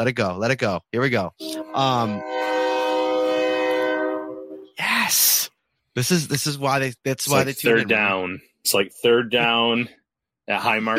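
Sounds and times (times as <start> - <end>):
speech: 0.0 - 2.5, 6.0 - 10.9
train horn blowing: 1.4 - 4.8.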